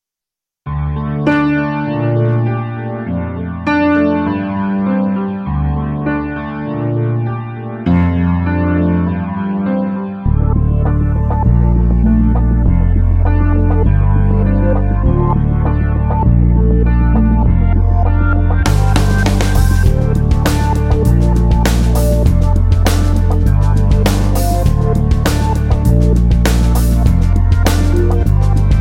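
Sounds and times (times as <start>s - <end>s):
ambient brass music: 0.7s - 28.7s.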